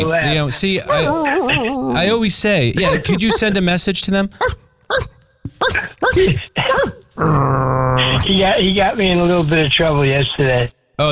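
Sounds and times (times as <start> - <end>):
speech: 0.0 - 11.0
puppy growling: 0.2 - 3.6, 4.4 - 8.3.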